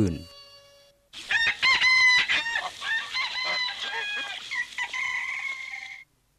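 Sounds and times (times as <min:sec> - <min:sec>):
speech: 0:00.0 - 0:00.3
rooster-like junglefowl crowing: 0:01.2 - 0:06.1.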